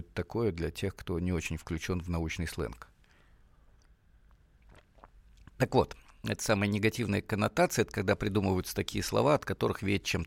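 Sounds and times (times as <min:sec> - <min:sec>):
speech: 0:00.2 - 0:02.9, 0:05.6 - 0:10.2
person sipping tea with soft wet mouth sounds: 0:03.0 - 0:06.2
brief slurping gulps of tea: 0:03.8 - 0:06.2.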